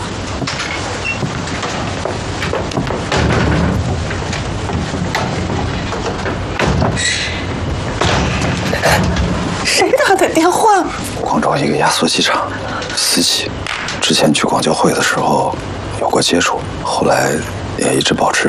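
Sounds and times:
firecrackers being set off: 0.0s - 16.9s
heavy firecracker booms: 2.6s - 10.4s
speech: 11.6s - 18.4s.

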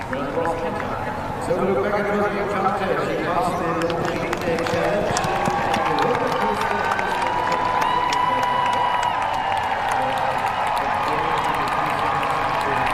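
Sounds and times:
spectators clapping at an equestrian cross-country competition: 0.0s - 12.9s
large outdoor crowd of spectators at an equestrian cross-country competition cheering: 4.2s - 12.9s
spectators whooping at an equestrian cross-country competition: 4.4s - 12.9s.

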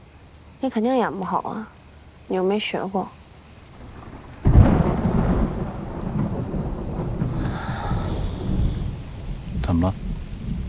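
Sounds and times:
speech: 0.6s - 3.2s, 9.7s - 10.0s
thunder crack: 3.7s - 10.6s.

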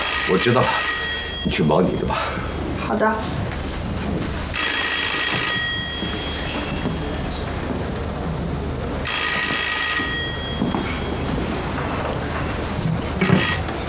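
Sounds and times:
telephone ringing in a study: 0.0s - 2.8s, 4.5s - 8.1s, 8.8s - 12.2s, 13.2s - 13.8s
steady rumbling background: 0.0s - 13.8s
speech: 0.3s - 3.4s.

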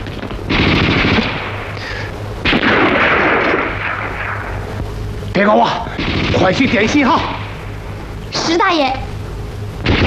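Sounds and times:
heavy gunfire bursts near a mine: 0.5s - 4.8s, 5.9s - 7.9s, 9.8s - 10.0s
speech: 5.4s - 7.4s, 8.5s - 9.0s.

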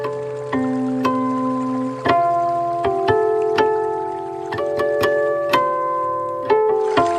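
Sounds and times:
bell-like guqin harmonics imitating dripping water: 0.0s - 7.1s
sustained low plucked guqin tones: 0.0s - 7.1s.

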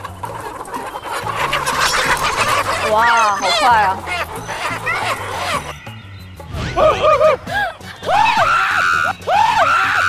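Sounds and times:
rooster clucking while being caught by hand: 0.0s - 5.7s
laughter: 1.3s - 5.7s, 6.7s - 10.0s
speech: 2.9s - 4.5s, 6.8s - 7.5s.

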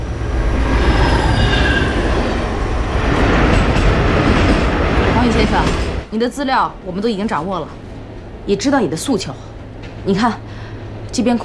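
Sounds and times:
passenger train running on rails: 0.0s - 11.4s
passenger train wheel squeal: 0.6s - 2.5s
speech: 5.6s - 7.8s, 8.5s - 10.5s, 11.1s - 11.4s.

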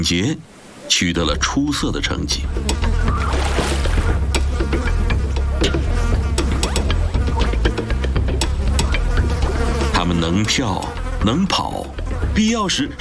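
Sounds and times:
speech: 0.0s - 3.1s, 10.2s - 12.9s
dense continuous buzzing drone: 2.4s - 12.9s
sharp ticks and clicks: 2.6s - 3.0s, 4.2s - 9.7s.

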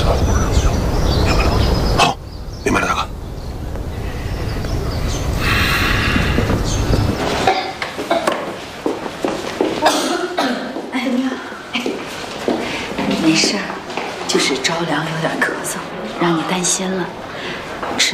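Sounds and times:
low rumbling noise: 0.0s - 18.1s
person coughing in short rough bursts: 9.8s - 10.7s.

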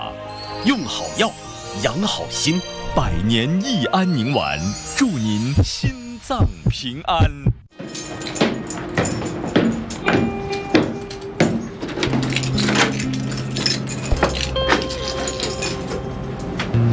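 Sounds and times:
speech: 0.6s - 7.6s
keys jangling and scraping in a stiff old door lock: 7.8s - 16.5s.

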